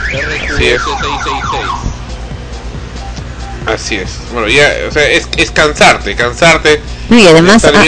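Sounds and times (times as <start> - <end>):
car alarm wailing in swooping warbling tones: 0.0 - 2.0
low rumble of street traffic: 0.0 - 7.8
speech: 0.1 - 1.9, 3.6 - 7.8.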